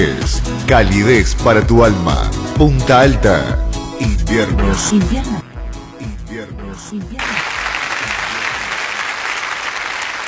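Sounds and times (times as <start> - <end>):
speech: 0.0 - 5.4
large group applauding: 7.2 - 10.2.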